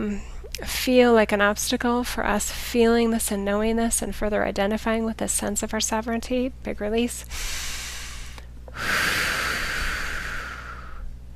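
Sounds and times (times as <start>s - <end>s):
speech: 0.0s - 7.8s, 8.8s - 9.3s
long loud breath out through the mouth: 7.3s - 11.1s.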